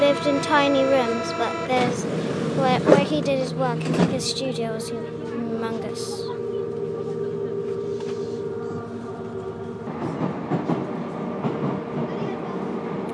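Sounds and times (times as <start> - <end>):
metro train rumbling on rails: 0.0 - 13.1
speech: 0.2 - 6.5.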